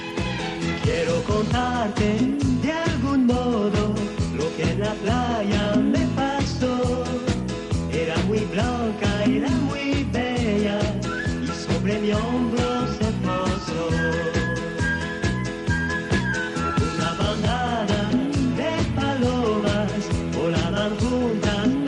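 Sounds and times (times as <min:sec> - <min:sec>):
lead vocalist singing a Spanish pop song: 0:00.0 - 0:15.1, 0:16.7 - 0:21.8
full band playing a cheerful 1970s Spanish pop song with a bouncy beat: 0:00.0 - 0:21.8
speech: 0:01.4 - 0:03.4.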